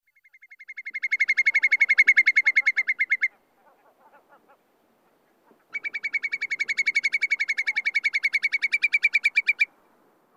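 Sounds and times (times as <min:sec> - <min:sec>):
whimbrel trills on breeding bogs in Finland: 0:00.1 - 0:03.4, 0:05.7 - 0:09.7.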